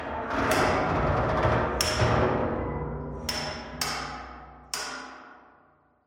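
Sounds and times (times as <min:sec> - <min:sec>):
metal pipe banging: 0:00.3 - 0:05.7.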